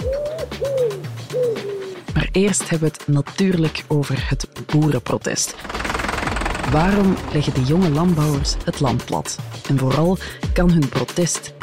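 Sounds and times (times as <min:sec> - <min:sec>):
pigeons cooing: 0:00.0 - 0:02.1
speech: 0:02.3 - 0:05.8, 0:06.7 - 0:11.6.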